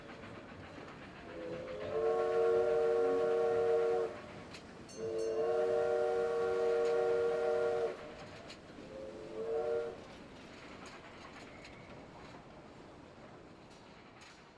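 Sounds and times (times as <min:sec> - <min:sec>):
steady rumble of a passing train: 0:00.0 - 0:14.5
diesel locomotive horn blasts: 0:01.4 - 0:04.3, 0:04.9 - 0:08.1, 0:08.9 - 0:10.0.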